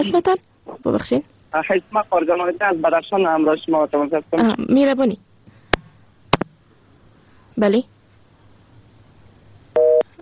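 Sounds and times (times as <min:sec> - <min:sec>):
speech: 0:00.0 - 0:05.3, 0:07.6 - 0:08.0
telephone busy tone after a dropped call: 0:09.8 - 0:10.0.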